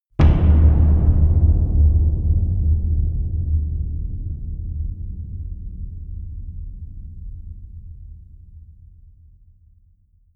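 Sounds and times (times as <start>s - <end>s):
dark cavern impacts: 0.2s - 8.1s.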